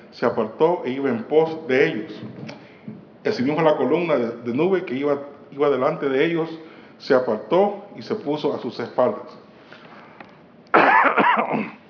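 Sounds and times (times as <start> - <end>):
speech: 0.2 - 2.6, 3.2 - 9.4, 11.4 - 11.8
harsh cough: 10.7 - 11.8.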